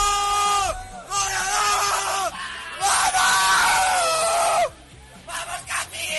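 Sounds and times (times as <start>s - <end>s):
football players shouting in celebration in a locker room after a win: 0.0s - 4.8s.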